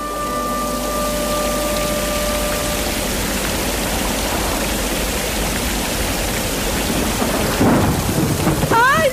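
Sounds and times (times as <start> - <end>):
heavy rain pouring: 0.0 - 9.1
low rumbling thunder: 1.6 - 9.1.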